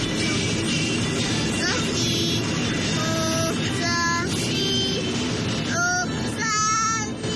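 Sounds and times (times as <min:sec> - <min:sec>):
steady low rumble of stopped car interior: 0:00.0 - 0:07.3
3-year-old child singing a radio station jingle in a stopped car: 0:01.5 - 0:05.1, 0:05.7 - 0:07.3.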